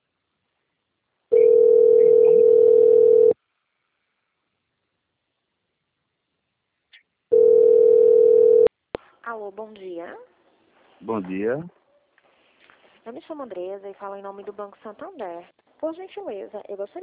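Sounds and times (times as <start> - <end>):
ringback tone of an outgoing telephone call: 1.3 - 3.4, 7.3 - 8.7
speech: 9.4 - 10.3, 11.0 - 11.8, 13.0 - 17.0.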